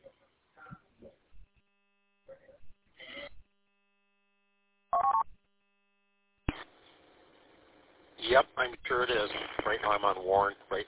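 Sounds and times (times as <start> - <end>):
static hiss: 6.4 - 10.8
choppy band-limited radio repeater noise: 6.5 - 7.0, 8.2 - 10.8
speech: 8.3 - 10.8.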